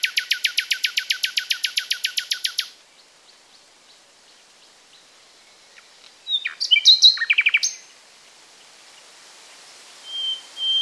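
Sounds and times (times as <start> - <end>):
common nightingale singing, Luscinia megarhynchos: 0.0 - 3.6, 4.9 - 7.9, 10.1 - 10.7.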